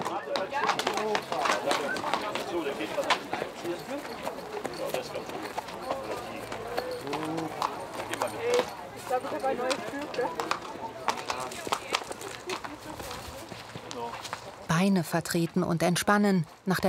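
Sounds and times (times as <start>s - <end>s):
racehorse hooves clip-clopping at a walking pace: 0.0s - 15.7s
speech: 14.8s - 16.8s.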